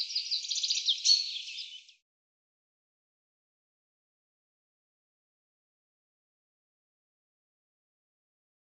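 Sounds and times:
common chaffinch song: 0.0s - 2.0s.

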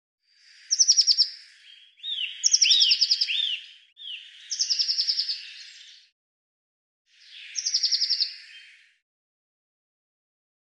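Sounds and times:
Eurasian blue tit calling with thin notes and buzzy trills: 0.6s - 6.0s, 7.4s - 8.8s.

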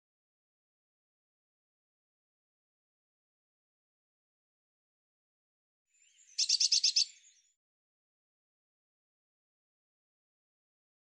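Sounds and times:
Eurasian blue tit churring call: 6.4s - 7.2s.

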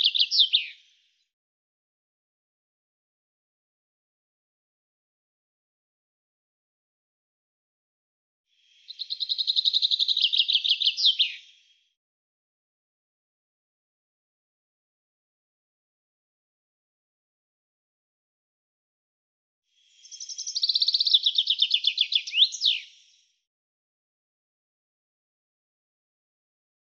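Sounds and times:
bird song in rapid high trilled phrases: 0.0s - 1.0s, 8.7s - 11.8s, 19.9s - 23.3s.

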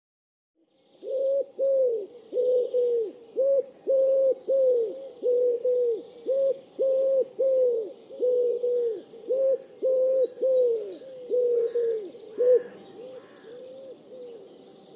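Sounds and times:
bird giving low mellow hooting notes: 1.0s - 14.5s.

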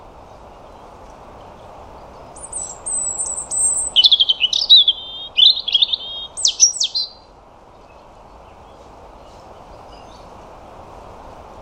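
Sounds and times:
European robin singing: 0.4s - 10.4s.

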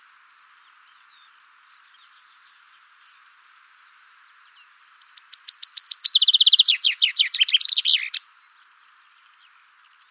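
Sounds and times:
chaffinch song of sharp chirps, rattling trill and tumbling flourish: 5.0s - 10.0s.

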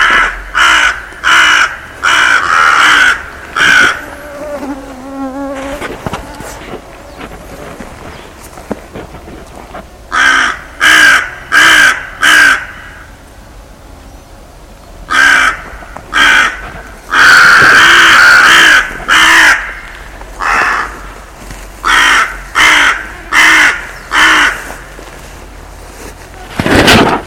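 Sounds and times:
bird calling with harsh raspy caws: 0.0s - 4.6s, 10.1s - 13.2s, 15.1s - 21.2s, 21.8s - 24.9s.

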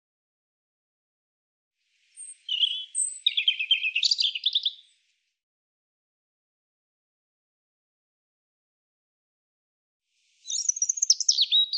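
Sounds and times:
European robin song: 2.0s - 5.4s, 10.3s - 11.7s.

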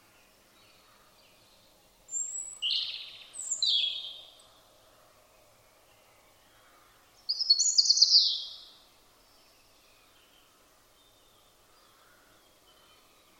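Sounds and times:
European robin song: 0.0s - 4.6s, 7.2s - 11.6s.

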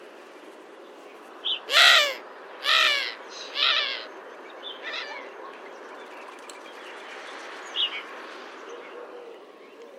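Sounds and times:
bird cawing: 1.7s - 4.1s.

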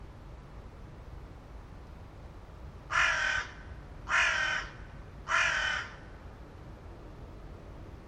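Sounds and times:
bird giving harsh cawing calls: 2.9s - 6.2s.

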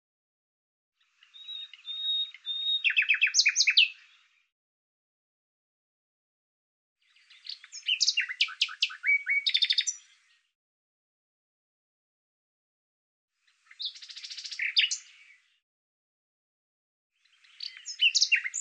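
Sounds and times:
bird chirping and trilling: 1.2s - 4.3s, 7.1s - 10.1s, 13.6s - 15.3s, 17.2s - 18.6s.

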